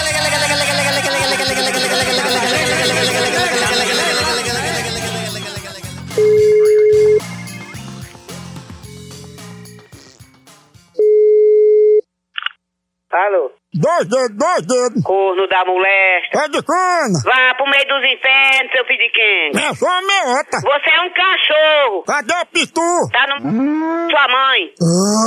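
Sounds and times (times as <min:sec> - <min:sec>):
laughter: 0:00.0 - 0:06.1, 0:19.5 - 0:20.7
telephone line beeps while placing a call: 0:06.2 - 0:07.7, 0:11.0 - 0:12.0
speech: 0:14.0 - 0:25.2.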